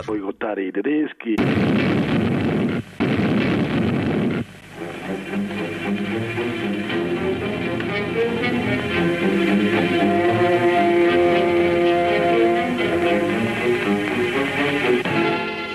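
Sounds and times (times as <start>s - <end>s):
speech: 0.0s - 3.5s
fuel tank explosion: 1.4s - 4.5s
low rumble: 1.4s - 7.8s
steady droning tones: 1.5s - 15.1s.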